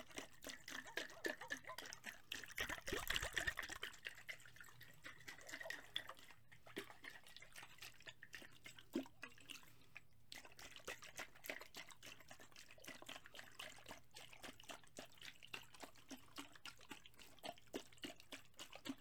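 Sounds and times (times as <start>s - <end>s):
liquid sloshing from shaking: 0.0s - 19.0s
foamy liquid fizzing and crackling: 2.4s - 3.9s.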